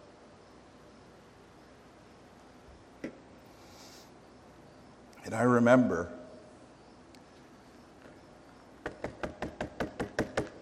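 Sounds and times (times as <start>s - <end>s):
speech: 5.2s - 6.2s
knocking on a bedroom door: 8.8s - 10.6s.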